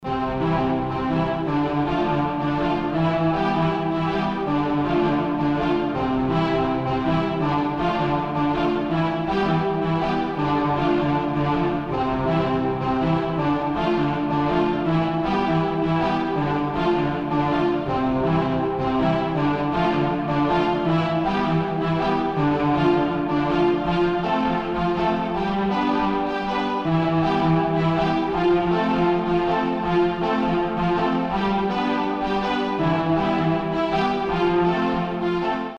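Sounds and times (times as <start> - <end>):
looping string theme music: 0.0 - 35.7.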